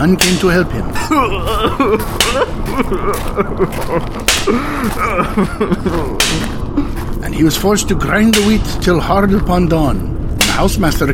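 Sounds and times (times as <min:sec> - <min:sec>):
speech: 0:00.0 - 0:06.6, 0:07.2 - 0:11.1
pained howling and wailing cries: 0:00.0 - 0:09.5
laughter: 0:00.6 - 0:06.9
whip lashes cracking against a body: 0:04.2 - 0:04.6, 0:06.2 - 0:06.6.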